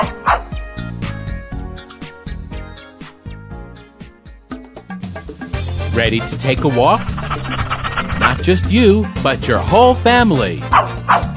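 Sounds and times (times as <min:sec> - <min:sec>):
dog barking in short sharp yaps: 0:00.0 - 0:00.5, 0:10.7 - 0:11.3
upbeat musical backing: 0:01.1 - 0:10.7
speech: 0:06.0 - 0:07.2, 0:08.4 - 0:10.9.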